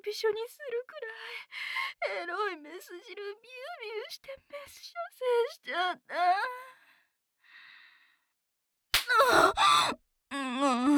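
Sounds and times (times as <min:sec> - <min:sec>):
speech: 0:00.0 - 0:06.6, 0:09.1 - 0:10.9
sharp slap across the face: 0:09.0 - 0:09.2.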